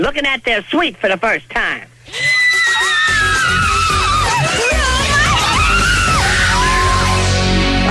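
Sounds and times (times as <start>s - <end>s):
speech: 0.0s - 2.3s
several girls shrieking and squealing excitedly: 2.1s - 7.3s.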